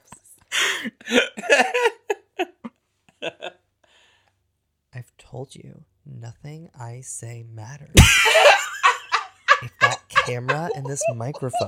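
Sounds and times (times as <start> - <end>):
breathy wheezing laughter: 0.5 - 3.6, 8.0 - 11.6
speech: 0.8 - 2.0, 5.4 - 8.5, 10.3 - 11.6
person hiccuping after laughing: 9.7 - 11.6.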